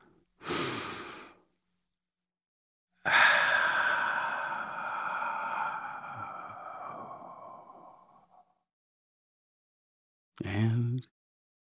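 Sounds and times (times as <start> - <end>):
deep breath: 0.4 - 1.5, 3.0 - 8.6
speech: 10.4 - 11.2.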